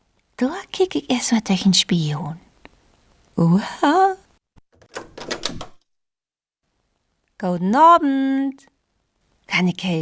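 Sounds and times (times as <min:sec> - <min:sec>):
speech: 0:00.4 - 0:02.4, 0:03.4 - 0:04.2, 0:07.4 - 0:08.7, 0:09.5 - 0:10.0
front door lock clicking: 0:04.8 - 0:05.8.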